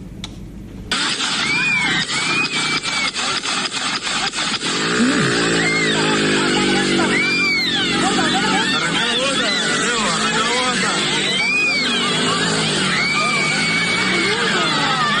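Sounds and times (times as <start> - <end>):
sharp gunshots during a street fight: 0.9 - 5.6
droning engine-like sound: 0.9 - 15.1
people screaming: 0.9 - 15.1
chaotic crowd shouting: 1.0 - 3.5, 4.2 - 15.1
laughter: 1.1 - 15.1.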